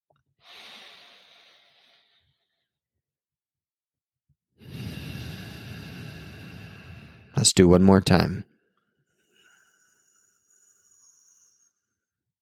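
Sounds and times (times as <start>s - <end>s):
slow breaths during a guided breathing exercise: 0.4s - 2.8s, 4.6s - 7.4s, 9.1s - 12.2s
speech: 7.4s - 8.5s.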